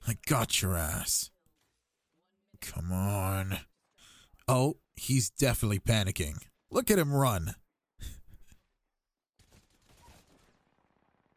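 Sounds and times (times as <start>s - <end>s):
speech: 0.2s - 1.3s, 2.6s - 3.7s, 4.5s - 8.2s
charge rifle gunfire in a video game: 9.4s - 11.3s.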